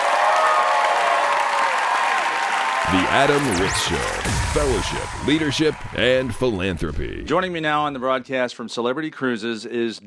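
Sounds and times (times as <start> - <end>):
audience applause: 0.0 - 2.9
speech: 2.9 - 10.0.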